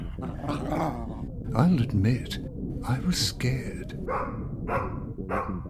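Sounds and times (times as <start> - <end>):
speech: 0.2 - 5.6
female dog barking in a living room: 4.1 - 5.5.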